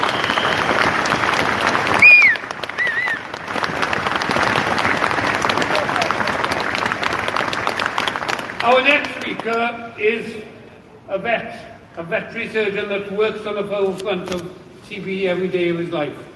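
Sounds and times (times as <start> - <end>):
whistle: 0.0 - 0.9, 2.0 - 3.2
room full of people applauding: 0.0 - 9.6
speech: 8.8 - 10.5, 11.1 - 16.3.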